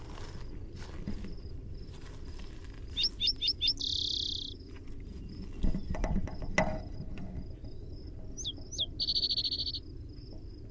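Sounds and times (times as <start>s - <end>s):
low rumbling background: 0.0s - 10.7s
spotted towhee primary song with buzzy trill: 2.9s - 10.7s.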